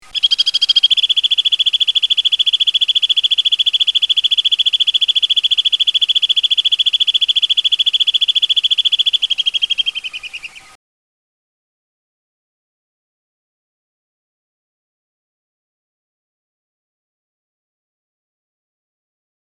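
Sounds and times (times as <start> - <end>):
short modified alpine swiftlet call: 0.0 - 10.8.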